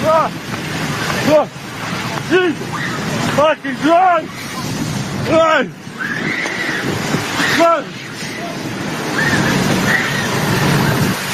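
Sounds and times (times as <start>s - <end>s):
heavy ocean wave crashing ashore in Southern California: 0.0s - 11.3s
speech: 0.2s - 0.5s, 1.2s - 1.7s, 2.3s - 4.5s, 5.2s - 7.0s, 7.6s - 8.0s
faint high screams of people running: 2.4s - 11.3s.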